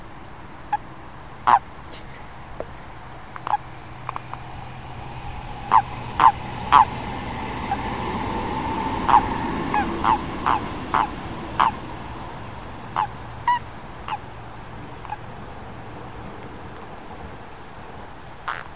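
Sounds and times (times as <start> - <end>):
steady background noise: 0.0 - 18.7
amphibian giving short honking calls: 1.4 - 2.1, 3.4 - 4.4, 5.6 - 7.0, 9.0 - 11.8, 12.9 - 14.2, 18.5 - 18.7.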